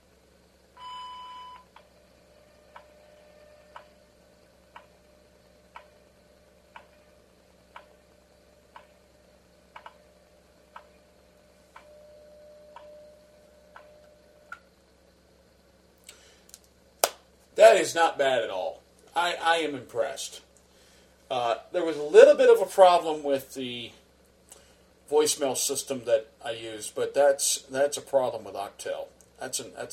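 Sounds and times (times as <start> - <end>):
time signal beep: 0.8 - 1.7
speech: 17.6 - 20.5, 21.3 - 24.0, 25.1 - 29.9.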